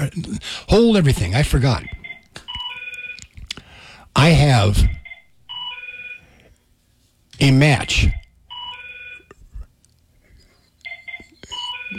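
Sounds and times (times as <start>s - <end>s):
speech: 0.0s - 2.0s, 4.2s - 5.0s, 7.4s - 8.2s
electronic telephone ringing during a fundraising pledge drive: 1.8s - 3.2s, 5.0s - 6.3s, 8.5s - 9.3s, 10.9s - 11.9s.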